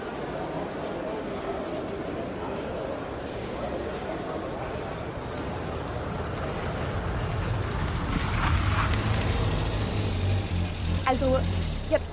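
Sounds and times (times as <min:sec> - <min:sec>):
radio-play sound effect crowd murmur of a busy street: 0:00.0 - 0:07.8
radio-play sound effect traffic noise of a busy street: 0:00.0 - 0:12.1
radio-play sound effect car engine rumbling: 0:05.0 - 0:12.1
speech: 0:11.1 - 0:12.1.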